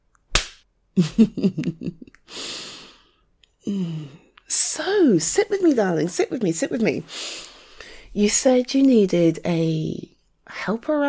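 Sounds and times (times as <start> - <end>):
slap on bare buttocks: 0.3 - 0.6
speech: 1.0 - 2.4, 3.6 - 7.5, 8.1 - 11.0
person gasping: 2.3 - 4.3, 7.1 - 8.1.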